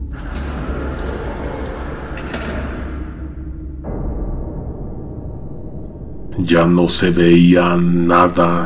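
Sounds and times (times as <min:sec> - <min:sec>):
elevator mechanism rumbling and whirring: 0:00.0 - 0:06.0
speech: 0:06.4 - 0:08.6.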